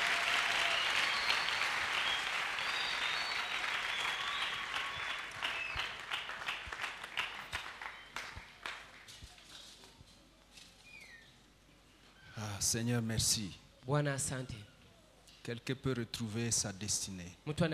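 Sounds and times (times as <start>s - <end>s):
congregation applauding at a church service: 0.0s - 9.2s
speech: 12.6s - 14.7s, 15.4s - 17.7s.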